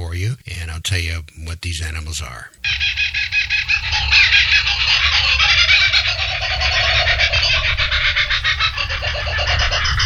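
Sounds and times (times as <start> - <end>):
speech: 0.2 - 2.6
kookaburra laughing call: 2.6 - 10.0.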